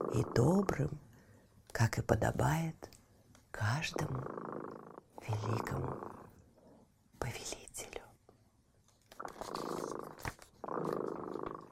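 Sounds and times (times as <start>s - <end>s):
cat purring: 0.0s - 1.0s, 3.6s - 7.0s, 9.1s - 11.7s
speech: 0.1s - 1.0s, 1.8s - 2.9s, 3.6s - 4.5s, 5.2s - 6.2s.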